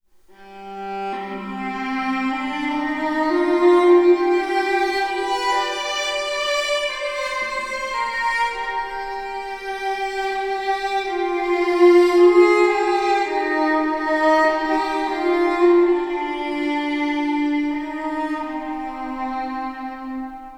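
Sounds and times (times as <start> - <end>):
music with reverb: 0.3 - 20.5.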